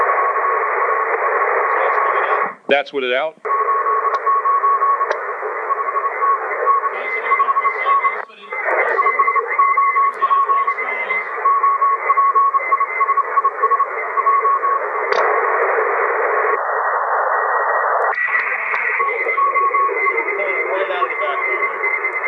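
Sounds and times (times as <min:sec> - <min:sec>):
radio receiver hiss: 0:00.0 - 0:22.2
speech: 0:02.7 - 0:03.5
Morse code CW tone on radio receiver: 0:03.5 - 0:15.0, 0:18.9 - 0:22.2.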